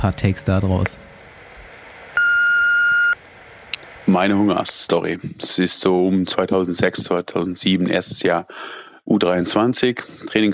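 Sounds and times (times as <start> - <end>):
speech: 0.0 - 1.1, 4.2 - 10.5
faint hiss: 0.0 - 10.4
answering machine beep: 2.2 - 3.2.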